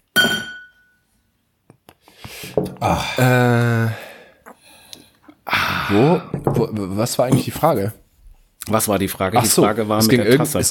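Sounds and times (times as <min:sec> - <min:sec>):
glasses clinking in a toast: 0:00.1 - 0:01.0
speech: 0:02.4 - 0:04.0, 0:05.9 - 0:08.0, 0:08.7 - 0:10.6.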